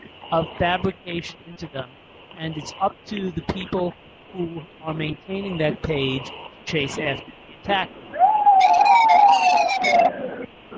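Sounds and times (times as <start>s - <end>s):
speech: 0.3s - 8.0s, 9.8s - 10.3s
emergency vehicle siren wailing while passing: 8.2s - 10.2s.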